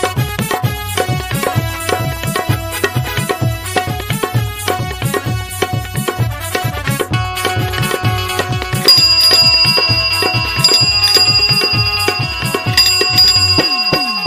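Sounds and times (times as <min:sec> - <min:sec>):
loud music with steady thumping bass beat: 0:00.0 - 0:14.2
bicycle bell ringing in bright trills: 0:08.9 - 0:14.2.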